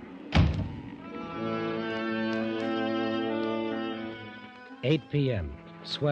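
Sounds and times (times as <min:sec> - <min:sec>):
steady sustained tonal drone: 0:00.0 - 0:06.1
chart room door on a ship thudding shut: 0:00.3 - 0:00.9
speech: 0:04.8 - 0:06.1.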